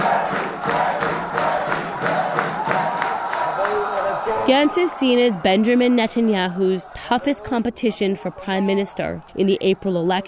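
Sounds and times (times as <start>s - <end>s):
rhythmic chanting or clapping: 0.0s - 9.3s
large crowd cheering at a political rally in Tel Aviv, Israel: 0.0s - 10.2s
speech: 4.5s - 10.2s.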